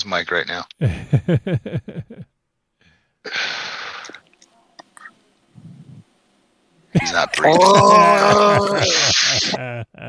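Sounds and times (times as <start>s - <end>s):
speech: 0.0s - 2.3s, 6.9s - 10.0s
laughter: 0.8s - 2.3s, 7.0s - 10.0s
person imitating a Wookiee growl: 7.3s - 10.0s.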